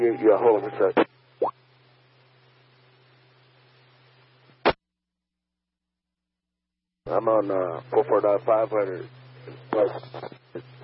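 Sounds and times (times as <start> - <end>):
steady low hum: 0.0 - 4.8, 7.1 - 10.8
speech: 0.1 - 1.1, 7.1 - 10.8.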